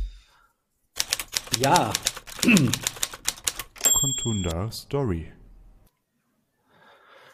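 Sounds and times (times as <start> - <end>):
crisp typewriter key clacks in a podcast segment jingle: 1.0 - 4.6
speech: 1.6 - 2.9, 4.0 - 5.4.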